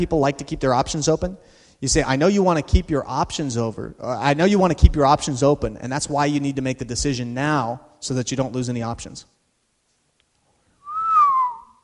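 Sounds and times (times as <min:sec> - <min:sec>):
speech: 0:00.0 - 0:09.4
reverse whistle made by breathing in: 0:10.8 - 0:11.8.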